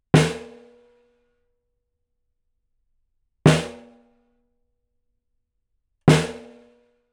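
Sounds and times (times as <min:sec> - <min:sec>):
snare drum recorded with R121 bidirectional microphone: 0:03.5 - 0:03.8, 0:06.1 - 0:06.6.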